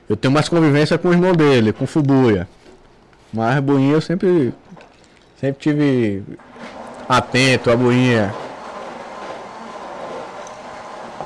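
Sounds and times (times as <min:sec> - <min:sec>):
speech: 0:00.1 - 0:02.6, 0:03.3 - 0:04.6, 0:05.4 - 0:08.4
blender running: 0:06.4 - 0:11.2.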